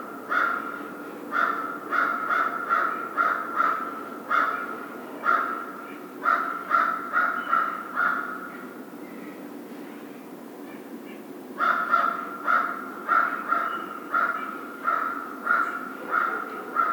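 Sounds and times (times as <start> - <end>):
American crow giving harsh caws: 0.3 - 8.5, 11.6 - 16.9.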